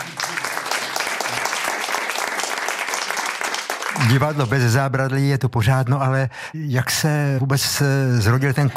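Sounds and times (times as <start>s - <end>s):
sizable audience applauding an actor: 0.0s - 4.8s
speech: 4.0s - 8.7s.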